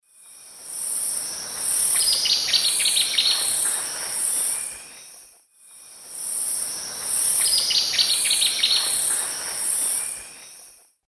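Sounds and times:
Tyrannopsis sulphurea calls in Eastern Lowlands of South America: 0:02.0 - 0:05.3, 0:07.3 - 0:10.8.

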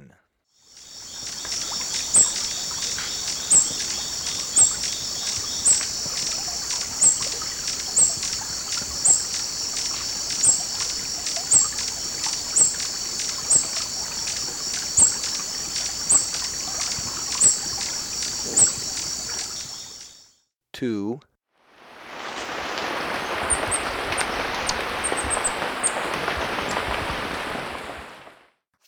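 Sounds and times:
Fork-tailed Woodnymph: 0:00.8 - 0:20.2, 0:21.8 - 0:28.4.

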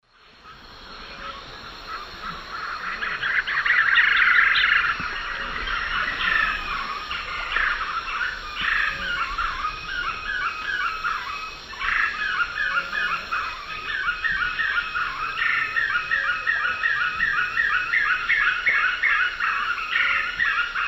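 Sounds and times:
Monasa nigrifrons song: 0:00.0 - 0:20.8.

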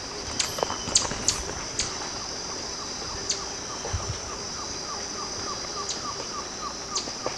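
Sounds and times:
Campylopterus largipennis feeding call in the Eastern Lowlands of South America: 0:00.1 - 0:07.3.

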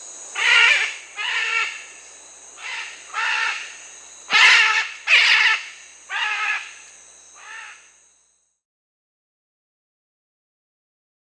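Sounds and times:
faint steady high tone: 0:00.0 - 0:08.7
red-and-green macaw squawks: 0:00.4 - 0:01.9, 0:02.6 - 0:07.9.

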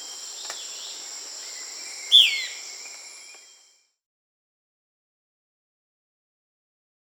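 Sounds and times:
high-pitched insect chorus in South America: 0:00.0 - 0:03.8
Euler's flycatcher call in South America: 0:02.1 - 0:02.6.

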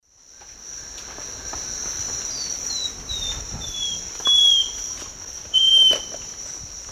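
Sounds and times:
Microcerculus marginatus singing in South American eastern lowlands: 0:02.3 - 0:06.2.

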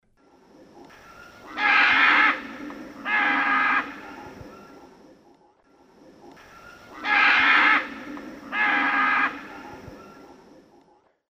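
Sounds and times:
pair of Ara chloropterus flight calls in the Eastern Lowlands of South America: 0:00.8 - 0:05.0, 0:06.2 - 0:10.5.

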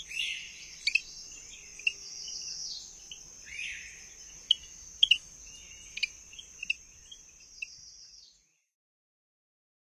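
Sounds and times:
greenhouse frog chirping in North America: 0:00.0 - 0:07.8.

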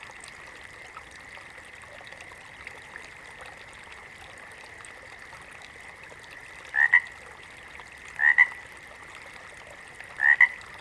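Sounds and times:
water frog double croaks: 0:06.7 - 0:07.1, 0:08.2 - 0:08.6, 0:10.2 - 0:10.6.

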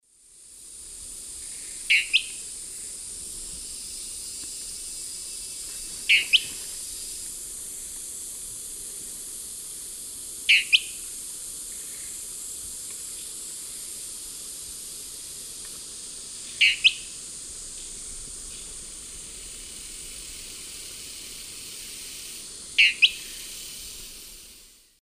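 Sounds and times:
Tyranneutes stolzmanni song in South American eastern lowlands: 0:01.9 - 0:02.4, 0:06.1 - 0:06.5, 0:10.5 - 0:10.9, 0:16.6 - 0:17.0, 0:22.8 - 0:23.4.

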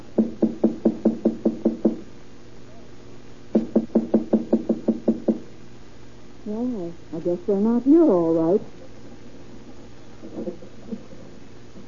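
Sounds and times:
knocking on an apartment door: 0:00.2 - 0:02.0, 0:03.6 - 0:05.5
speech: 0:06.5 - 0:08.8.

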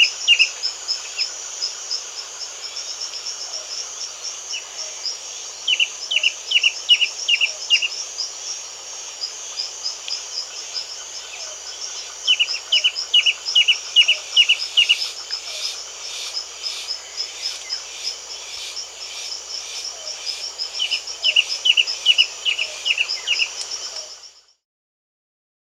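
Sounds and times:
constant high-pitched insect drone: 0:00.0 - 0:24.6
stripe-chested antwren song in South America: 0:04.5 - 0:08.5, 0:09.6 - 0:18.5, 0:19.4 - 0:24.5.

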